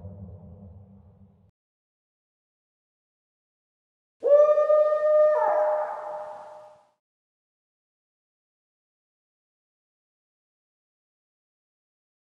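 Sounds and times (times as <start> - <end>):
dark spooky sounds: 4.2 - 6.8.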